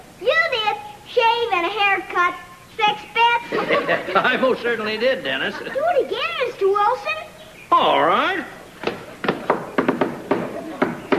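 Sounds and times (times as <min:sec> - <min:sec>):
low hiss: 0:00.0 - 0:11.1
speech: 0:01.2 - 0:08.6
laughter: 0:03.4 - 0:05.8
knocking on a door: 0:08.8 - 0:11.1.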